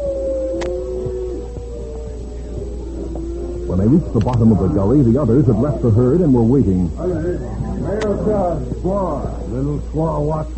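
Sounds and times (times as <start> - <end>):
man imitating a long wailing coyote howl as a signal: 0.0 - 5.9
low hum: 0.0 - 10.5
speech: 3.7 - 10.5.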